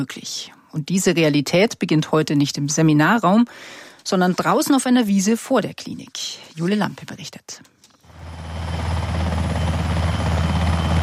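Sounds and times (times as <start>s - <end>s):
speech: 0.0s - 7.8s
helicopter landing on a meadow in front of a clinic: 8.1s - 11.0s.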